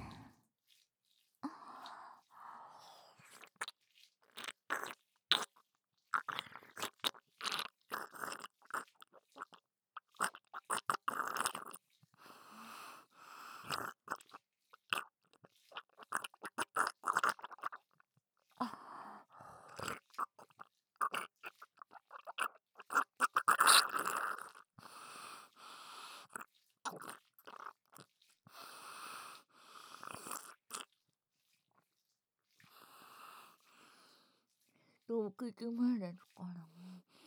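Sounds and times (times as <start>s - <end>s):
chewing of food with wet clicks and crunchy bites: 3.2s - 11.9s, 13.6s - 18.0s, 19.7s - 24.7s, 26.2s - 28.4s, 30.0s - 32.8s
speech: 35.1s - 36.7s.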